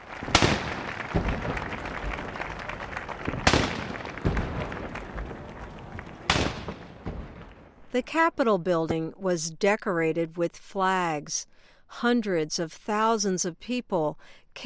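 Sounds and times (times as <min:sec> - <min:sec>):
outdoor noise: 0:00.0 - 0:14.6
cannons firing a ceremonial salute: 0:00.2 - 0:07.8
speech: 0:08.0 - 0:14.6.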